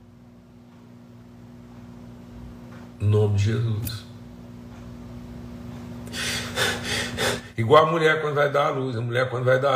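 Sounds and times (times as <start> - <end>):
faint low hum: 0.0 - 9.7
speech: 3.0 - 4.1, 7.6 - 9.7
rapid forceful breathing: 6.0 - 7.6.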